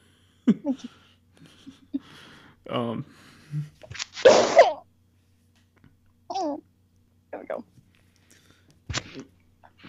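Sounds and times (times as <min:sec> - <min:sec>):
speech: 0:00.5 - 0:01.0, 0:02.7 - 0:03.7
person sneezing: 0:03.9 - 0:04.8, 0:08.9 - 0:09.3.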